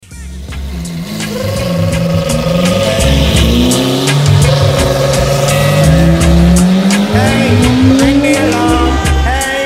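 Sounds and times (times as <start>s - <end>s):
alarm ringing: 0.9s - 9.5s.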